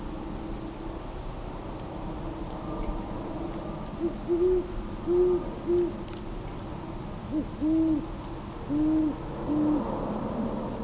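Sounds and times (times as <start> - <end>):
faint background hiss: 0.0 - 10.8
Great horned owl hooting: 4.0 - 5.9, 7.3 - 8.1, 8.7 - 9.9.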